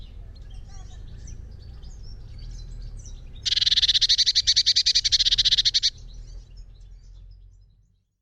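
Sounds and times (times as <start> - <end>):
Eurasian blue tit Cyanistes caeruleus giving buzzy rapid churring call: 3.4 - 6.0.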